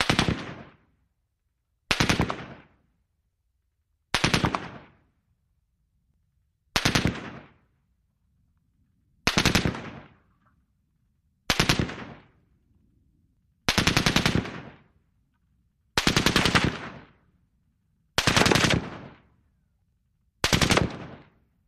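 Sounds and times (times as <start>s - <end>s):
distant M60 machine gun bursts: 0.0s - 0.8s, 1.9s - 2.8s, 4.1s - 5.0s, 6.8s - 7.7s, 9.2s - 10.2s, 11.5s - 12.4s, 13.7s - 15.0s, 16.0s - 17.2s, 18.2s - 19.3s, 20.4s - 21.4s.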